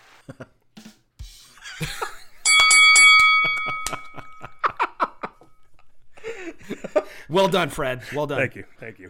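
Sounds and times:
speech: 0:00.3 - 0:00.6, 0:07.3 - 0:09.0
laughter: 0:01.5 - 0:02.5, 0:03.4 - 0:07.2
bell ringing as a last-call signal: 0:02.4 - 0:04.8.

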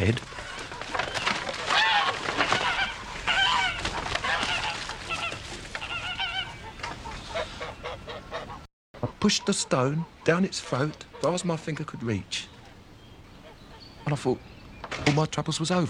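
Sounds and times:
speech: 0:00.0 - 0:00.4, 0:09.2 - 0:12.5, 0:14.1 - 0:15.8
flock of geese honking at a house: 0:00.0 - 0:12.2.

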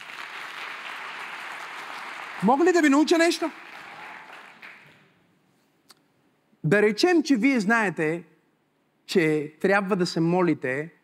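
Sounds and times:
crowd applause of many hands clapping: 0:00.0 - 0:05.0
speech: 0:02.4 - 0:03.7, 0:06.7 - 0:08.3, 0:09.1 - 0:11.0.

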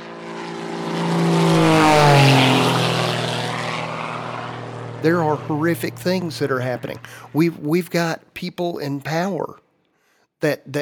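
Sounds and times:
propeller airplane flying past overhead: 0:00.0 - 0:09.5
speech: 0:05.0 - 0:09.6, 0:10.4 - 0:10.8.

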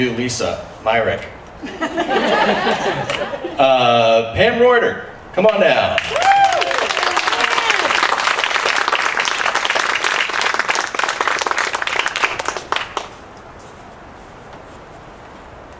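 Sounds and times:
speech: 0:00.0 - 0:06.4
laughter: 0:01.6 - 0:03.6
people cheering: 0:05.5 - 0:13.1
sizable audience applause: 0:06.0 - 0:13.2.

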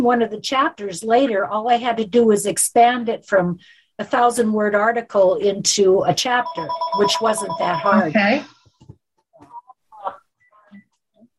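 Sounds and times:
speech: 0:00.0 - 0:08.6
telephone ringing with short uneven electronic tones: 0:06.3 - 0:08.1.

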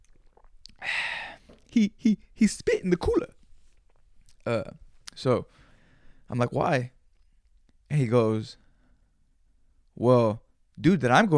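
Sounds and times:
slurping sip of water: 0:00.0 - 0:01.8
speech: 0:01.8 - 0:03.4, 0:04.5 - 0:05.6, 0:06.3 - 0:07.0, 0:07.9 - 0:08.6, 0:10.0 - 0:11.3.

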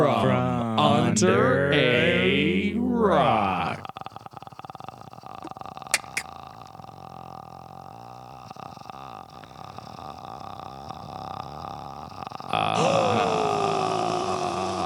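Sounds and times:
speech: 0:00.3 - 0:03.8
loud rasping inward breathing with a groaning edge: 0:03.8 - 0:14.8.

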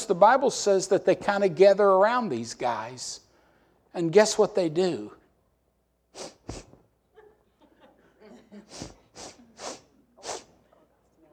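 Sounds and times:
speech: 0:00.1 - 0:03.2, 0:03.9 - 0:05.2, 0:06.1 - 0:06.6
person exaggeratedly imitating sniffing: 0:06.1 - 0:06.9, 0:08.6 - 0:10.6
laughter: 0:07.1 - 0:11.1.

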